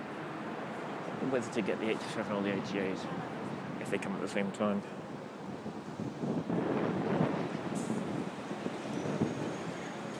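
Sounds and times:
wind on a breezy morning buffeting the microphone: 1.0s - 10.1s
speech: 1.2s - 5.1s.

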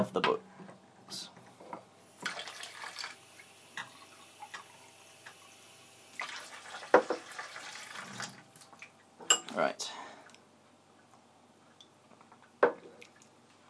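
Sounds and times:
speech: 0.0s - 0.4s, 1.1s - 1.3s
tap water running into a glass during a coffee cupping session: 2.2s - 9.0s.

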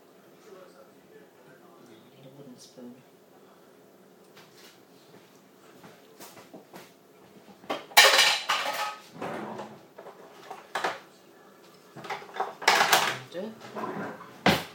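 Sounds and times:
pots and a wooden spoon clattering in a home kitchen: 7.6s - 11.0s, 12.0s - 14.7s.

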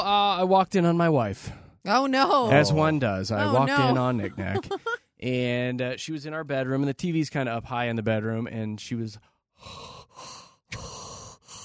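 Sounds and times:
speech: 0.0s - 11.0s
laughter: 2.5s - 5.0s
person imitating heavy mouth breathing: 9.6s - 11.6s.

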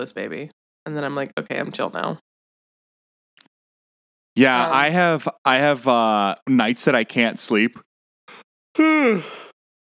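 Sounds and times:
speech: 0.0s - 2.3s, 4.4s - 9.5s
short breath in: 8.3s - 9.6s
person yawning with a voiced moan: 8.8s - 9.5s.

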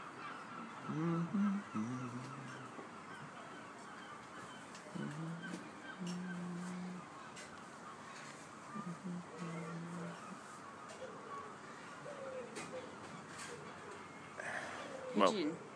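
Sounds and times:
quiet outdoor ambience: 0.0s - 15.7s
person humming soft low sustained notes: 0.9s - 2.7s, 5.0s - 7.1s, 8.7s - 10.4s.

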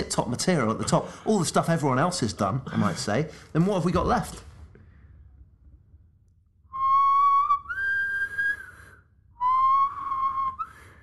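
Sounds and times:
speech: 0.0s - 4.5s
man whistling a short wavering tune: 6.7s - 11.0s.

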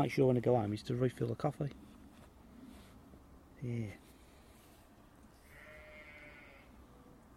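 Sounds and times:
speech: 0.0s - 1.9s, 3.6s - 4.0s
outdoor hiss: 0.0s - 7.3s
sheep bleating: 5.4s - 6.8s.

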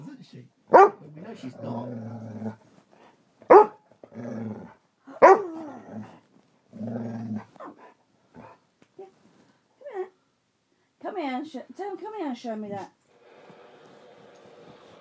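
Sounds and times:
speech: 0.3s - 2.7s, 11.8s - 13.0s
dog barking: 0.7s - 1.1s, 3.5s - 3.8s, 5.2s - 5.5s
dog growling: 1.2s - 2.7s, 4.0s - 4.8s, 5.4s - 8.6s
dog yipping and grumbling: 3.5s - 3.8s.

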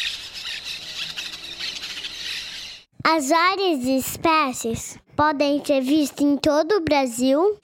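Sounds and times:
flock of parakeets squawking and squealing: 0.0s - 2.9s
speech: 3.1s - 7.6s.

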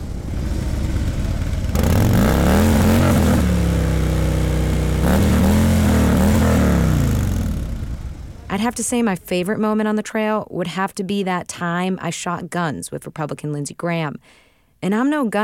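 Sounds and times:
engine being revved hard: 0.0s - 9.0s
speech: 8.6s - 15.4s.

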